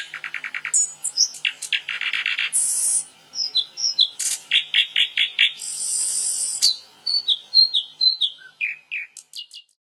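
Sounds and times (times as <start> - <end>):
bird song: 0.0 - 9.8.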